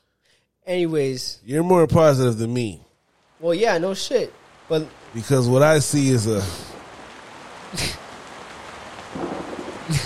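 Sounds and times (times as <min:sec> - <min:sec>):
speech: 0:00.7 - 0:06.7, 0:07.7 - 0:08.0
steady rain hissing: 0:01.6 - 0:10.0
thunder cracking and rumbling: 0:03.1 - 0:10.0.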